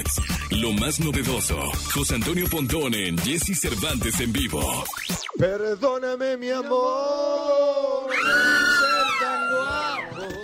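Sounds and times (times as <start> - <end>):
speech: 0.1 - 8.5
crowd screaming and cheering: 8.0 - 10.4.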